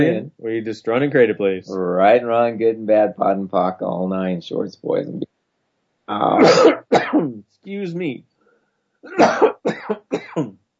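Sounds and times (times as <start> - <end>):
speech: 0.0 - 5.3, 6.1 - 8.3, 9.0 - 10.6
harsh coughing: 6.3 - 7.4, 9.1 - 10.6.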